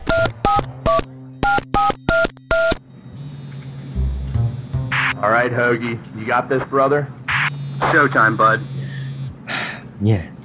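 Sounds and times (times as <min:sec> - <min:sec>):
touch-tone telephone keypad dual-tone beeps: 0:00.0 - 0:02.8, 0:03.6 - 0:08.9
low hum of telephone line noise: 0:00.0 - 0:10.4
speech: 0:05.2 - 0:07.2, 0:07.8 - 0:08.7, 0:10.0 - 0:10.3.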